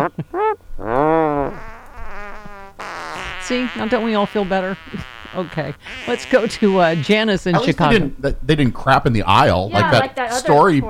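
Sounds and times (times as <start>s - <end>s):
comic fart sound effects: 0.0s - 7.5s
speech: 0.1s - 0.9s, 3.5s - 10.8s.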